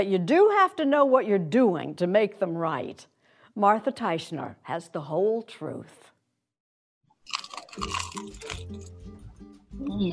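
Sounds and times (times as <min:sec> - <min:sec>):
speech: 0:00.0 - 0:06.1, 0:07.3 - 0:09.0, 0:09.8 - 0:10.1
dense crackling and chewing of bagel: 0:07.2 - 0:09.0
someone biting into a crusty bagel: 0:07.2 - 0:09.0.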